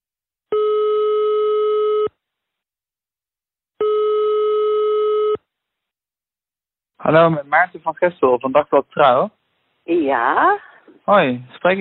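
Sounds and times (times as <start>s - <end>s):
ringing tone on an outgoing telephone call: 0.5s - 2.2s, 3.8s - 5.5s
speech: 7.1s - 11.7s.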